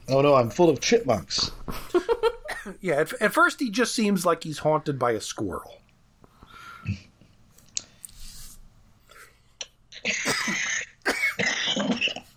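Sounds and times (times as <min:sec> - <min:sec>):
speech: 0:00.1 - 0:01.6, 0:02.6 - 0:05.8, 0:06.8 - 0:07.1
harsh raspy coughing: 0:02.4 - 0:02.8, 0:09.9 - 0:12.3
breaths between coughs: 0:06.2 - 0:07.0, 0:07.8 - 0:09.5.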